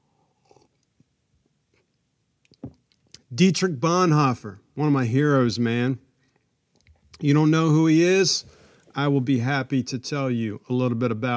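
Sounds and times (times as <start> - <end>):
person sipping a drink with slurping and swallowing: 0.2 - 1.1
speech: 3.3 - 6.0, 7.2 - 11.3.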